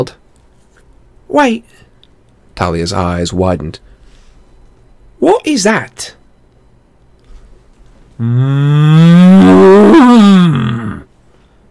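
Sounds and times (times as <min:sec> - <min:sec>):
speech: 0:00.0 - 0:00.2, 0:01.3 - 0:01.8, 0:02.6 - 0:03.8, 0:05.2 - 0:06.2, 0:08.2 - 0:10.9
cow serpent mooing beside a dock in the sea: 0:08.2 - 0:11.1.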